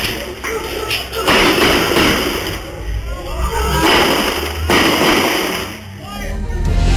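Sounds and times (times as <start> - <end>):
noisy outdoor background: 0.0 - 6.8
gunshots fired from a vehicle: 1.2 - 2.7, 3.7 - 5.9.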